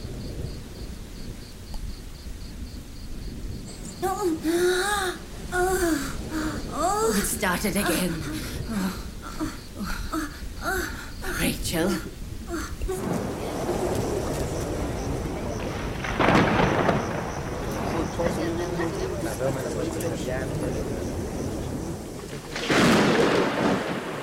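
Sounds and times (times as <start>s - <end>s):
rolling thunder rumbling during a storm: 0.0s - 24.2s
indistinct voices murmuring: 3.7s - 22.5s
speech: 4.0s - 6.2s, 7.0s - 10.0s, 11.4s - 12.2s, 19.4s - 21.2s.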